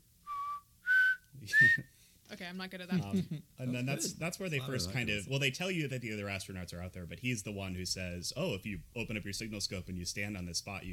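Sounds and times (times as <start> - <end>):
person whistling two short clear notes: 0.2 - 1.9
speech: 1.4 - 10.9.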